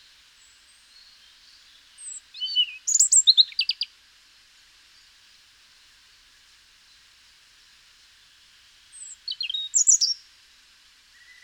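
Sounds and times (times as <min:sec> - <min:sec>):
European robin Erithacus rubecula singing: 0:00.9 - 0:03.9, 0:08.9 - 0:10.2.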